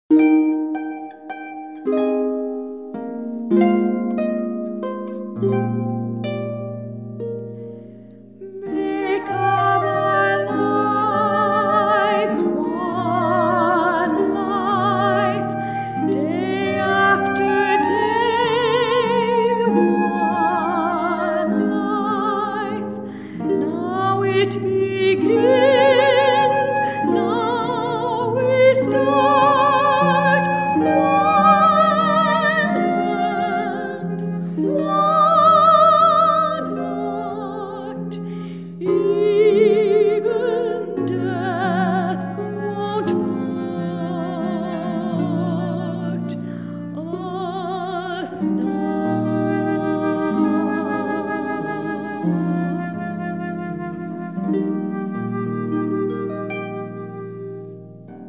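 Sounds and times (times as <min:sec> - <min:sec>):
harp: 0:00.1 - 0:58.2
voice: 0:08.4 - 0:23.0, 0:23.6 - 0:34.1, 0:34.7 - 0:38.2, 0:38.8 - 0:46.3, 0:47.0 - 0:52.2
flute: 0:08.4 - 0:58.2.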